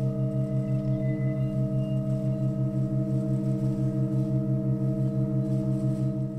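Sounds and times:
sustained organ drone holding one chord: 0.0s - 6.3s
faint brief rustle of noise: 0.3s - 6.3s.

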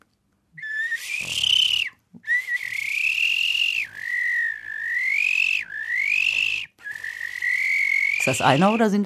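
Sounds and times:
person whistling imitation of stone-curlew courtship call: 0.6s - 8.8s
breaths: 1.0s - 2.8s, 6.4s - 7.6s
speech: 8.2s - 9.0s.

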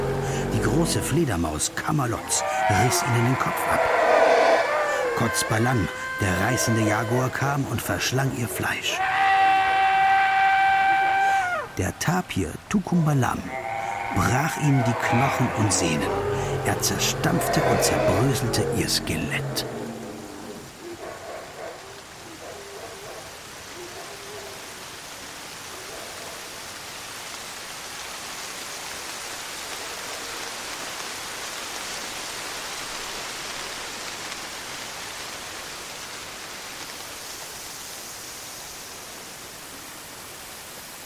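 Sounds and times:
steady rain falling: 0.0s - 41.0s
speech: 0.7s - 4.0s, 5.2s - 9.2s, 11.8s - 19.8s.

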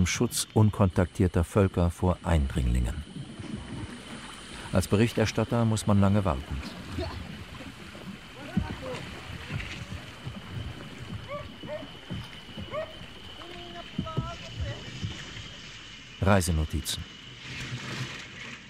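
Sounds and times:
speech: 0.0s - 3.1s, 4.7s - 7.2s, 16.3s - 17.2s
boat droning along a river in the Brazilian rainforest: 0.0s - 18.6s
continuous river water wash from a boat: 0.0s - 18.6s
faint voices and short calls: 4.5s - 16.8s.

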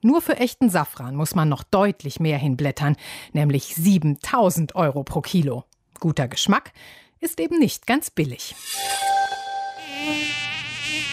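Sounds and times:
speech: 0.0s - 9.2s
mosquito buzzing in a studio: 8.6s - 11.1s.

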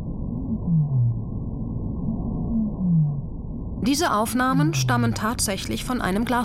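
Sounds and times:
steady murky underwater rumble: 0.0s - 6.4s
low moaning whale calls recorded via fiber-optic cable: 0.4s - 3.3s
speech: 3.8s - 6.4s.

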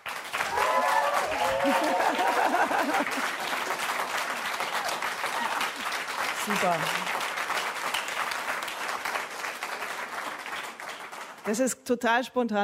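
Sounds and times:
live audience applause: 0.0s - 11.6s
laughter: 1.3s - 5.9s
speech: 6.5s - 7.2s, 11.5s - 12.6s.

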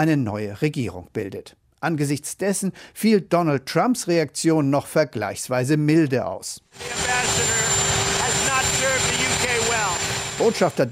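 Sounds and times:
speech: 0.0s - 9.6s, 10.4s - 10.9s
helicopter rotor clattering with droning engine whine: 6.8s - 10.9s.

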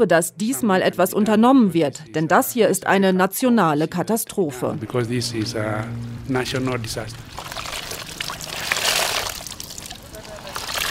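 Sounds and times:
speech: 0.0s - 7.4s
water sloshing and splashing in a river as clothes are washed: 6.3s - 10.8s.

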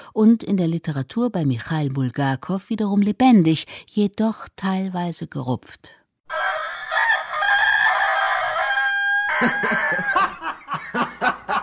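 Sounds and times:
speech: 0.2s - 6.4s, 9.4s - 11.2s
rooster clucking and cackling: 6.3s - 11.6s
rooster crowing: 6.3s - 11.6s.

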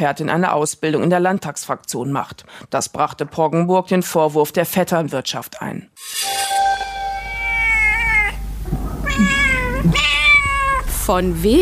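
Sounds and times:
speech: 0.0s - 6.5s, 11.1s - 11.6s
cat meowing loudly: 7.2s - 8.4s, 9.0s - 11.0s.

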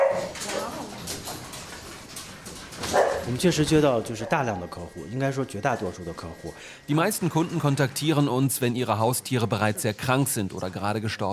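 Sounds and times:
puppy barking: 0.0s - 0.6s, 2.8s - 3.3s
speech: 3.3s - 11.3s.

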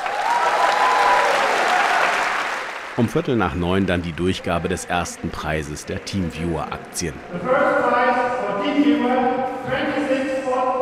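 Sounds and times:
crowd of employees applauding at a stock exchange: 0.0s - 6.6s
speech: 3.0s - 10.1s.

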